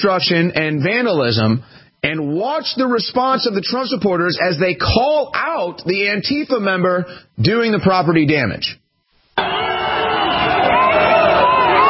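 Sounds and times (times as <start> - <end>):
speech: 0.0 - 8.8
large crowd booing and chanting: 9.4 - 11.8.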